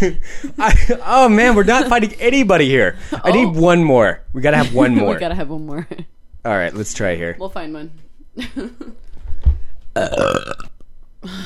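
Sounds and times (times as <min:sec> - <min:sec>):
speech: 0:00.0 - 0:09.0, 0:10.0 - 0:11.4
loud drawn-out burp: 0:10.0 - 0:10.8.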